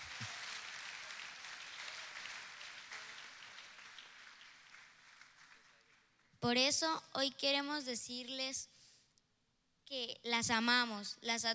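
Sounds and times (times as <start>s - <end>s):
audience applause: 0.0s - 6.2s
speech: 6.4s - 8.8s, 9.9s - 11.5s.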